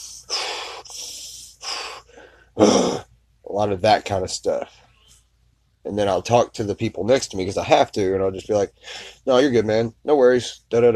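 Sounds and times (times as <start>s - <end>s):
man breathing heavily to calm himself: 0.0s - 2.8s, 8.8s - 9.2s
speech: 2.6s - 2.9s, 3.6s - 4.8s, 5.8s - 10.9s.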